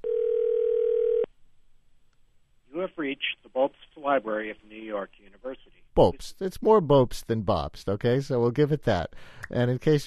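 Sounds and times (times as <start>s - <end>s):
telephone dial tone as a call is placed: 0.0s - 1.3s
speech: 3.0s - 10.0s.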